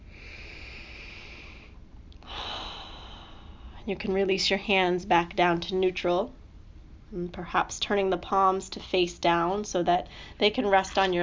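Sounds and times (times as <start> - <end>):
gentle human breath in and out during a guided relaxation exercise: 0.0 - 3.8
speech: 3.9 - 6.4, 7.1 - 11.2.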